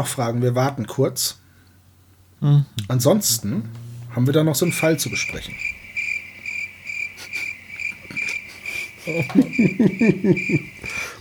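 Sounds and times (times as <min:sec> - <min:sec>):
speech: 0:00.0 - 0:01.4, 0:02.4 - 0:05.8, 0:09.1 - 0:11.0
faint noise: 0:00.0 - 0:11.1
crickets chirping in high trills: 0:03.5 - 0:11.1
laughter: 0:07.1 - 0:11.0.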